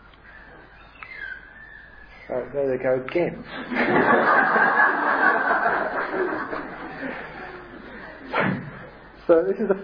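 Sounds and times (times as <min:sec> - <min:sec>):
birdsong with chirp and thin whistled call: 0:00.0 - 0:02.7
quiet hiss: 0:00.0 - 0:09.8
speech: 0:02.3 - 0:07.4, 0:09.3 - 0:09.8
laughter: 0:03.5 - 0:08.3.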